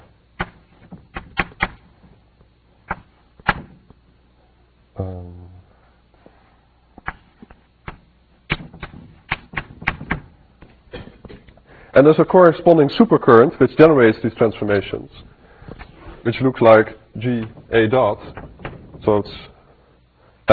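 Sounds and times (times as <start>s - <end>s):
chalk tapping on a board during a physics lecture: 7.0s - 10.7s
speech: 12.0s - 15.3s, 16.2s - 18.4s, 19.0s - 19.5s.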